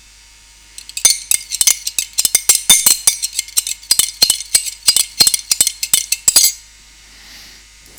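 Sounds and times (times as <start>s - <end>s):
spoon stirring in a cup: 0.8s - 6.6s.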